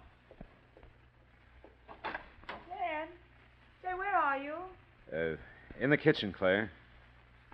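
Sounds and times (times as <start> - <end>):
soft footsteps of a man walking down a hallway: 0.0 - 2.4
faint low hum: 0.0 - 7.5
speech: 5.1 - 6.8.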